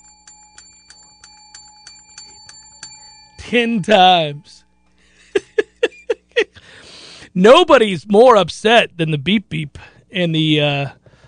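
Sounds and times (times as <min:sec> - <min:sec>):
bell ringing: 0:00.0 - 0:06.3
speech: 0:03.4 - 0:04.6, 0:07.4 - 0:11.0.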